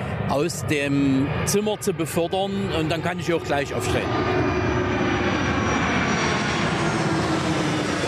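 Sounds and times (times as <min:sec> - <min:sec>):
airplane flying overhead on landing approach: 0:00.0 - 0:08.0
speech: 0:00.3 - 0:04.6.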